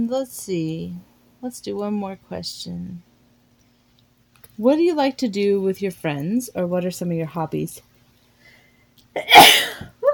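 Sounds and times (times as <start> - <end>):
speech: 0.0 - 3.1, 4.6 - 7.9, 9.2 - 9.9
person sneezing: 9.2 - 10.0.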